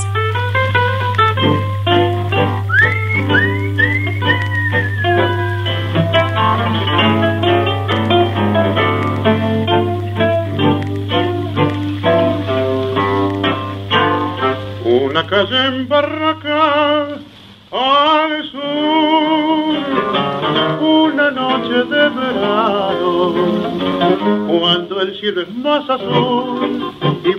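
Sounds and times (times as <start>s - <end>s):
tango shellac record played on a wind-up Victrola gramophone: 0.0s - 27.3s
speech: 15.3s - 17.9s, 20.6s - 26.8s.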